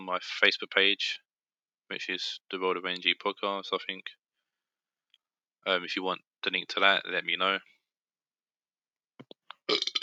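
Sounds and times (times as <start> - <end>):
speech: 0.1 - 1.2, 1.9 - 4.2, 5.6 - 7.7
throaty clicks and gulps: 9.2 - 10.0
loud rumbling burp: 9.6 - 10.0.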